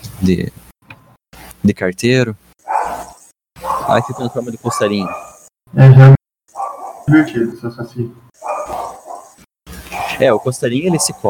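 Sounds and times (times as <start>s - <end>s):
speech: 0.2s - 0.7s, 1.6s - 2.4s, 3.9s - 6.2s, 7.1s - 8.3s, 10.2s - 11.2s
person imitating a dog barking: 2.7s - 5.4s, 8.4s - 9.3s, 9.9s - 11.2s.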